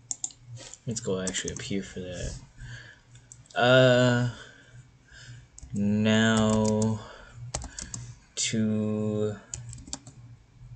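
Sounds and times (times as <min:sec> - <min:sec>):
low hum: 0:00.0 - 0:10.7
typing on a computer keyboard: 0:00.1 - 0:00.4, 0:06.3 - 0:06.9, 0:07.5 - 0:08.0, 0:09.5 - 0:10.2
speech: 0:00.8 - 0:02.5, 0:03.6 - 0:04.5, 0:05.7 - 0:07.1, 0:08.5 - 0:09.5.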